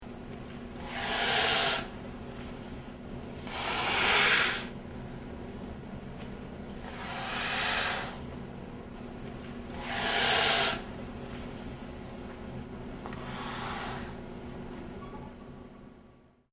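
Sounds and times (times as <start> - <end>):
northern pinesnake hissing: 0.8 - 5.4, 6.8 - 8.3, 9.7 - 14.3.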